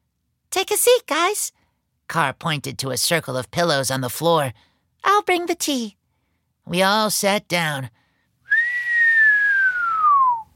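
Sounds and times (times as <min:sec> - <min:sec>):
speech: 0:00.6 - 0:06.0, 0:06.7 - 0:08.0
person whistling one long falling whistle: 0:08.5 - 0:10.5.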